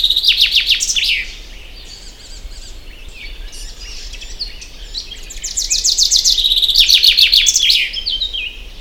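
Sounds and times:
common chaffinch singing: 0.0s - 8.8s.

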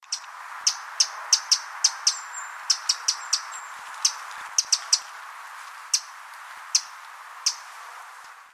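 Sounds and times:
Eurasian wren Troglodytes troglodytes ticking call notes: 0.0s - 8.4s
steady background hiss: 0.0s - 8.5s.

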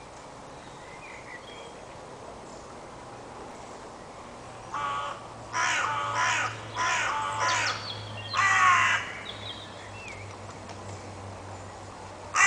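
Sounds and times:
Carrion crow Corvus corone cawing: 4.7s - 9.2s.

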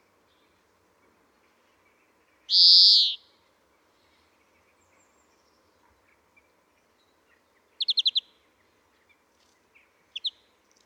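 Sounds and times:
European greenfinch Chloris chloris wheezing and twittering: 2.5s - 3.2s.

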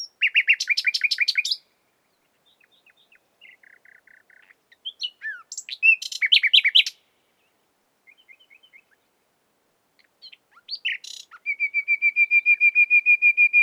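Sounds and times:
common nightingale Luscinia megarhynchos singing: 0.0s - 9.1s, 10.0s - 13.6s.

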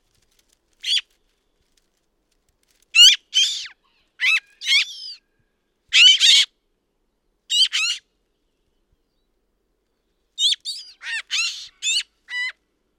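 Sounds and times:
Eurasian magpie Pica pica giving harsh scratchy calls: 3.0s - 5.2s, 5.9s - 6.5s, 7.5s - 8.0s, 10.4s - 12.6s.

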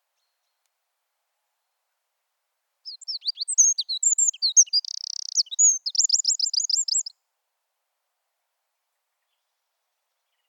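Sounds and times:
Eurasian wren Troglodytes troglodytes singing squeaky notes and buzzy trill: 2.9s - 7.1s.

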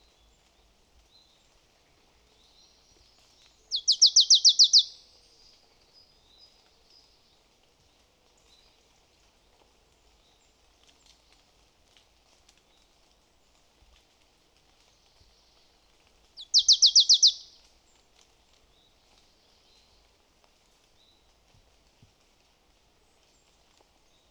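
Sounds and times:
marsh tit Poecile palustris calling: 3.7s - 4.9s, 16.4s - 17.5s.

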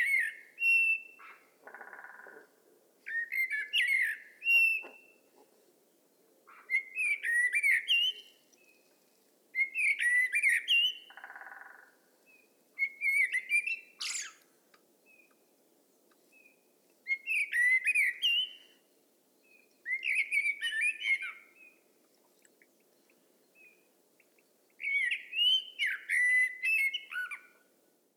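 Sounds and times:
Turdus merula common blackbird singing: 0.0s - 1.4s, 3.1s - 5.3s, 6.5s - 8.9s, 9.6s - 14.4s, 16.1s - 18.8s, 19.4s - 21.8s, 23.0s - 27.6s.

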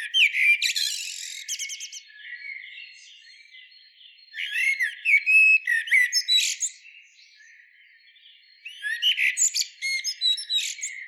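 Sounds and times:
Eurasian blackbird Turdus merula song: 0.0s - 11.0s.

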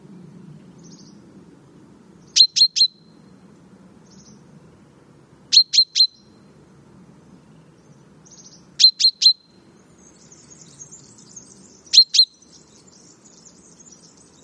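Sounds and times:
common chaffinch Fringilla coelebs calling: 2.2s - 3.2s, 5.5s - 6.4s, 8.2s - 14.4s.

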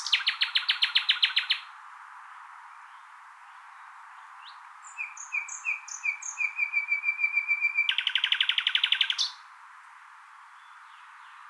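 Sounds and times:
common nightingale Luscinia megarhynchos singing whistles and churring trill: 0.0s - 1.7s, 4.4s - 9.4s.

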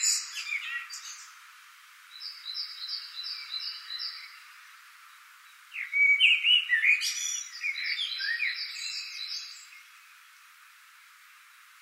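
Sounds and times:
common blackbird singing: 0.0s - 1.3s, 2.1s - 4.5s, 5.5s - 10.1s.

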